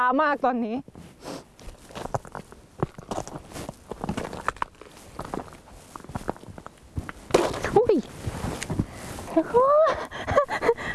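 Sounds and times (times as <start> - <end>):
speech: 0.0 - 1.4, 9.4 - 10.0
footsteps shuffling on slippery frozen river ice: 1.0 - 9.3.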